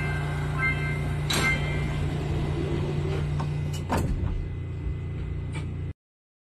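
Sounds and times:
slightly off-key tonal chime as metro train doors close: 0.0s - 2.6s
metro train carriage rumbling hum in Korea: 0.0s - 5.9s.

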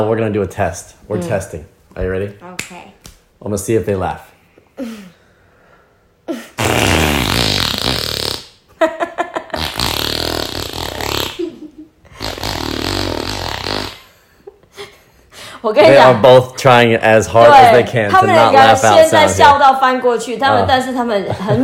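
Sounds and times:
speech: 0.0s - 5.1s, 15.6s - 21.6s
fart sounds: 6.6s - 8.6s, 9.4s - 11.5s, 12.1s - 14.1s
laughter: 21.1s - 21.6s.

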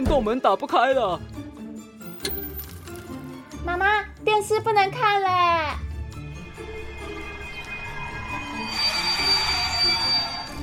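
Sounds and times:
speech: 0.1s - 1.4s, 3.6s - 5.8s
train metal wheels squealing to a stop: 8.0s - 10.6s.

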